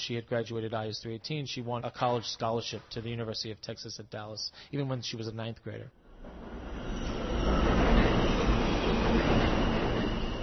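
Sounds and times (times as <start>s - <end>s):
speech: 0.0s - 6.6s
subway train rumbling through a station: 6.0s - 10.4s
faint high metallic squeals of a subway train: 6.1s - 10.4s.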